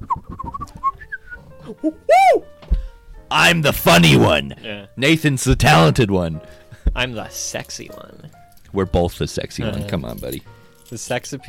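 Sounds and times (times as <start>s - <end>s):
person whistling a short wavering tune: 0.0s - 2.5s
speech: 1.7s - 2.5s, 3.3s - 11.4s.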